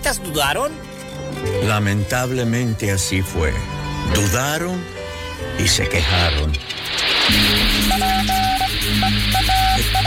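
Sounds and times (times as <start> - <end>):
speech: 0.1 - 9.6
radio static interference hiss: 5.6 - 10.0
high Morse-like beeping tones of an SOS call: 6.5 - 10.0.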